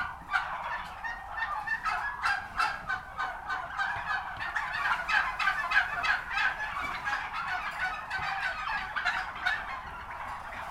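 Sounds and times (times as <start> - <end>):
turkeys gobbling in a chorus at a turkey farm: 0.0 - 10.6.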